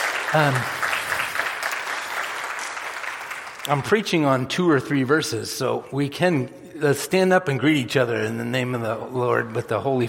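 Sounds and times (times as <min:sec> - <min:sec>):
church service audience applauding: 0:00.0 - 0:04.1
speech: 0:00.3 - 0:00.8, 0:03.7 - 0:10.0.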